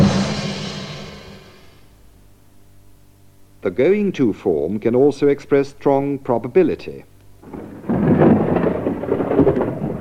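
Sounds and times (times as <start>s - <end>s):
low rolling thunder rumbling: 0.0s - 1.8s, 7.4s - 9.9s
speech: 3.6s - 7.6s
rain: 7.4s - 9.9s.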